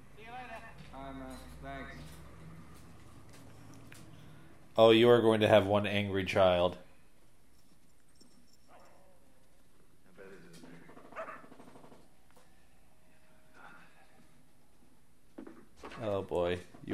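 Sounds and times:
speech: 4.8s - 6.8s
dogs barking: 8.7s - 9.3s, 11.0s - 11.7s.

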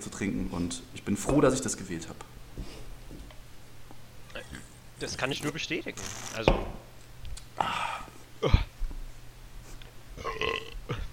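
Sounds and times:
low steady hum: 0.0s - 11.1s
speech: 0.2s - 2.8s, 5.0s - 6.8s, 7.6s - 7.8s, 8.4s - 8.7s
person burping: 8.4s - 8.8s, 10.2s - 11.1s.

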